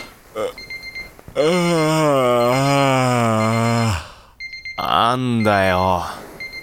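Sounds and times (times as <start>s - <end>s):
electronic alarm clock beeping: 0.0s - 6.6s
person groaning: 0.4s - 0.6s, 1.4s - 4.3s
speech: 0.4s - 0.7s, 1.3s - 2.8s, 5.1s - 6.2s.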